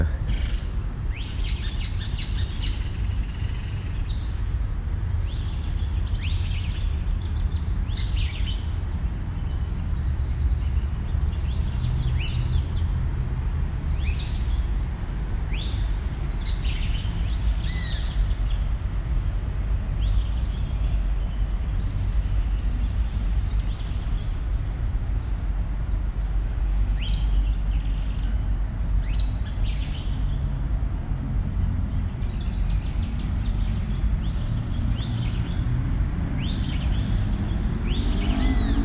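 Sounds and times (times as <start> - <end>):
birds singing and chirping in the early morning at the University of Antioquia: 0.0 - 38.8
steady low outdoor rumble: 0.0 - 38.8.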